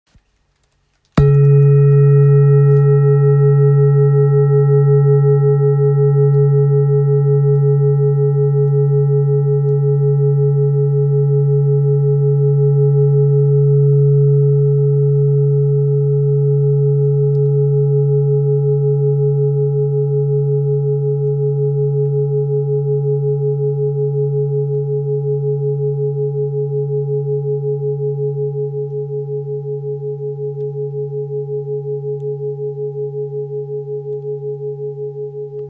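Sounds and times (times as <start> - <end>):
low-pitched singing bowl in C sharp weighing 2.18 kg: 1.2 - 35.6.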